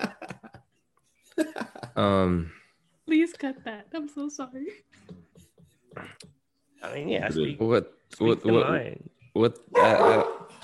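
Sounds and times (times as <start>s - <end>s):
speech: 1.4s - 2.6s, 3.4s - 5.1s, 6.8s - 10.3s
dogs barking: 9.7s - 10.6s.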